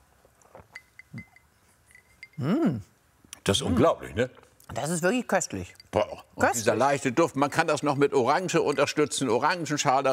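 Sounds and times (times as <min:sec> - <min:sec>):
glasses clinking in a toast: 0:00.6 - 0:02.5, 0:05.6 - 0:10.1
speech: 0:02.4 - 0:10.1.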